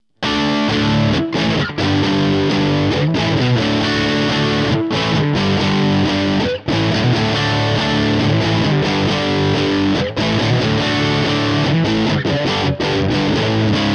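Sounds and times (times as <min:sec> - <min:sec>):
JCM2000 guitar amplifier: 0:00.0 - 0:13.9.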